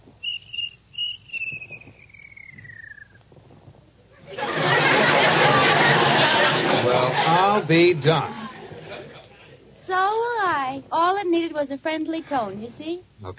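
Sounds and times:
cricket chirping inside a room: 0.2s - 3.2s
laughter: 4.2s - 9.6s
speech: 7.7s - 8.4s, 10.8s - 13.3s.

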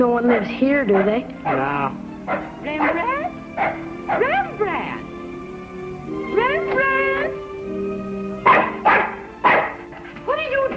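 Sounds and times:
speech: 0.0s - 5.0s, 6.1s - 7.4s
female dog barking: 0.9s - 4.5s, 8.4s - 10.1s.

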